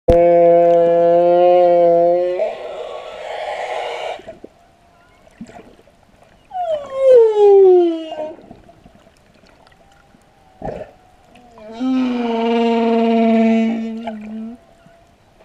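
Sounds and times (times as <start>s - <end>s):
whale giving long tonal harmonic moans: 0.1s - 15.2s.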